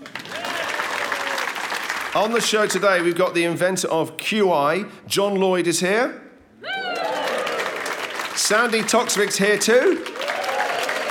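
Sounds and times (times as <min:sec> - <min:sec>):
live audience clapping: 0:00.0 - 0:03.2, 0:06.8 - 0:11.1
speech: 0:02.1 - 0:06.2, 0:08.5 - 0:10.2.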